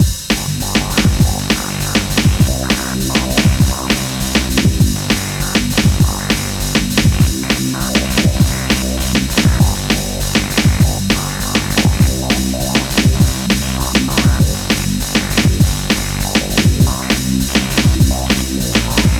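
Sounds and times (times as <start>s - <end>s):
hip hop bass: 0.0s - 19.1s.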